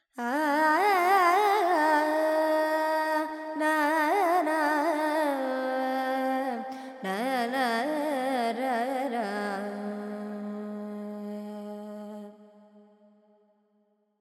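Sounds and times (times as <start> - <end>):
Carnatic female vocal alaps in Lydian mode with effects: 0.2 - 12.4.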